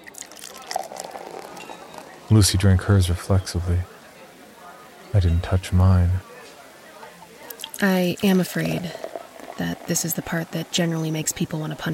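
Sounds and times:
bartender pouring drink into a glass: 0.0s - 2.9s, 7.4s - 11.9s
speech: 2.3s - 3.9s, 5.2s - 6.3s, 7.8s - 9.0s, 9.6s - 11.9s.

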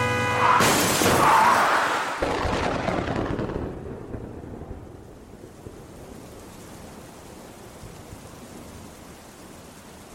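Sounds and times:
truck slamming into the side of a vehicle: 0.4s - 2.9s
glass shattering: 0.6s - 1.6s.

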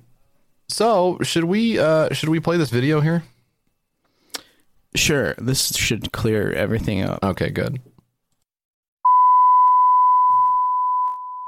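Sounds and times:
speech: 0.8s - 3.4s, 5.0s - 7.9s
loud steady electronic beep at a single pitch: 9.1s - 11.4s.

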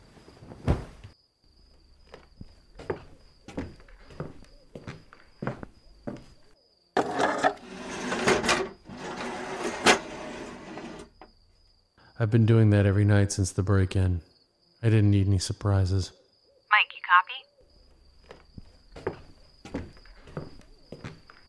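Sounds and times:
wooden chairs dragged scraping across the floor: 7.0s - 11.3s
speech: 12.2s - 16.2s.

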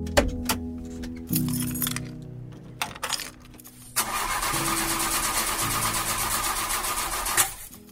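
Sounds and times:
old car engine cranking and whining without catching: 0.1s - 7.7s
old car engine clicks and rattles: 1.9s - 7.7s.

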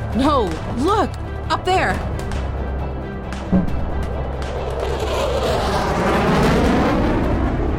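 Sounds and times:
speech: 0.2s - 2.2s
fighter jets roaring: 3.5s - 7.7s.

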